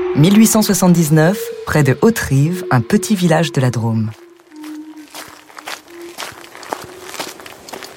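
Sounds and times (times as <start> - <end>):
speech: 0.2 - 4.2
footsteps of a postman walking his mail round: 4.0 - 7.9.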